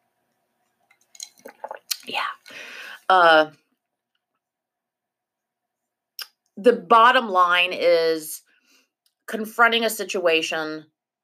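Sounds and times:
person slurping a hot drink: 1.2 - 2.5
speech: 2.1 - 3.6, 6.6 - 8.5, 9.3 - 10.9.

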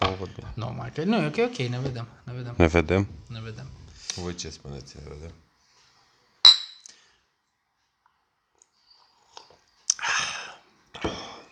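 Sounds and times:
speech: 0.2 - 5.4
whisky glasses clinking: 6.5 - 6.8.

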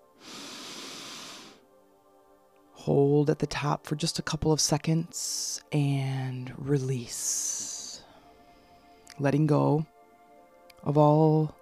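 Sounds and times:
slow deep inhalation during a guided meditation: 0.2 - 1.6
speech: 2.8 - 7.7, 9.2 - 9.9, 10.8 - 11.5.

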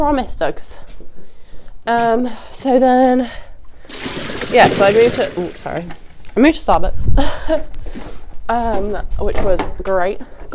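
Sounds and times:
speech: 0.0 - 1.0, 1.8 - 3.4, 4.5 - 10.5
water gushing into a water bucket: 3.9 - 6.4.

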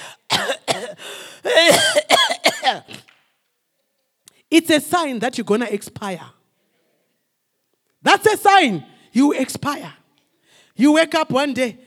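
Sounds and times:
harsh throaty coughs: 0.0 - 3.1
speech: 4.5 - 6.4, 8.0 - 10.0, 10.8 - 11.8.

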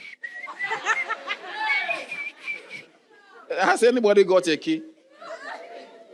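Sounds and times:
person whistling a steady high tone: 0.0 - 1.0, 2.0 - 2.9
faint chatter: 0.0 - 6.1
laughter: 0.3 - 3.4, 5.0 - 6.1
speech: 3.6 - 4.9.

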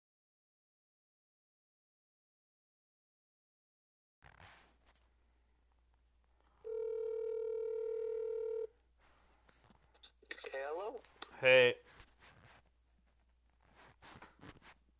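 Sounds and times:
phone ringing tone over the line: 6.6 - 8.7
speech: 10.9 - 11.8.

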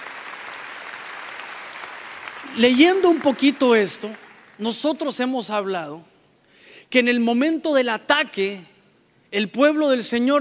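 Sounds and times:
congregation applauding during a church sermon: 0.0 - 4.6
speech: 2.4 - 6.1, 6.9 - 8.7, 9.3 - 10.3.

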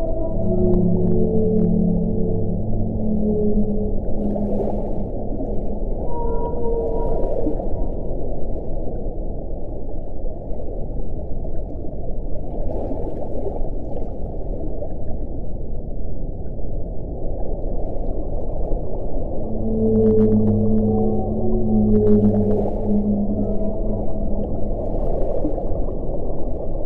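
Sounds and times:
whale calls with low moans and higher tonal cries: 0.0 - 8.8, 19.2 - 26.8
steady dense underwater rumble: 0.0 - 26.8.

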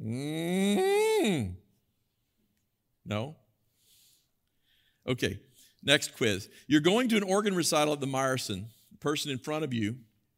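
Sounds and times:
person imitating a cow mooing: 0.0 - 1.6
speech: 3.1 - 3.4, 5.1 - 10.1.

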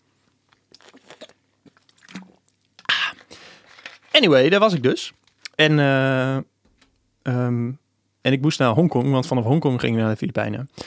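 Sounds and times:
wet mouth clicks: 0.5 - 3.2
quiet sips of water with soft slurping: 0.5 - 3.7
speech: 4.2 - 6.5, 7.2 - 10.8.

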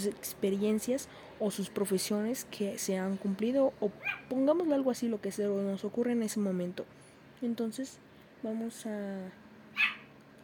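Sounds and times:
speech: 0.0 - 10.0
faint steady hum: 0.0 - 10.4
dog barking: 9.8 - 10.1.

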